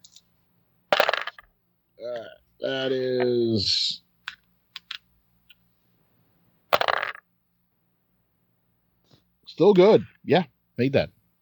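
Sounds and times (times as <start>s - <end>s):
dice clattering across a hard tabletop during a tabletop role-playing game: 0.9s - 1.5s, 4.3s - 5.0s, 6.8s - 7.2s
speech: 2.0s - 4.0s, 9.6s - 11.2s.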